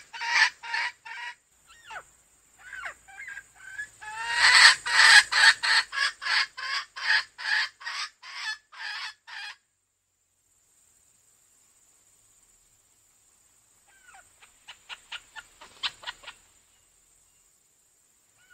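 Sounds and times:
female junglefowl clucking: 0.0 - 9.6, 13.9 - 16.5.

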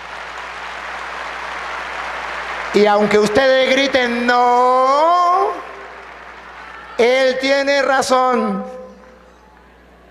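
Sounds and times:
audience applause at a debate: 0.0 - 7.9
speech: 2.7 - 5.2, 7.0 - 8.8.

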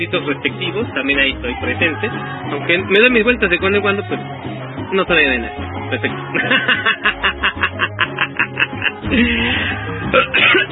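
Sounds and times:
speech: 0.0 - 7.4, 9.1 - 10.7
laughter: 6.0 - 10.6
person coughing: 10.2 - 10.7.

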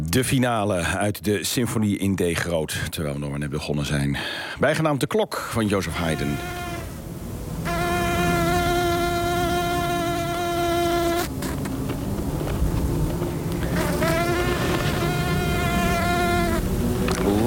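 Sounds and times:
speech: 0.2 - 6.6
bee flight buzz in the dunes of Zandvoort: 6.0 - 17.4
low background rumble: 6.6 - 17.4.

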